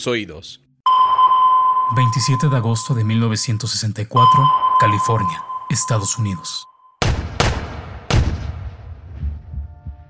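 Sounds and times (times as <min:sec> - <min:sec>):
speech: 0:00.0 - 0:00.6, 0:01.9 - 0:07.3
.22 caliber rifle shots fired from a window in California: 0:07.0 - 0:08.7
booming echo of rifle shots: 0:07.0 - 0:09.1.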